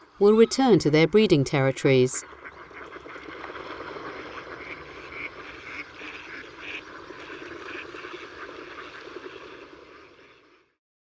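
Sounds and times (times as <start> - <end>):
speech: 0.2 - 2.4
crowd of mallard ducks quacking in Cabañeros Park: 2.2 - 10.4.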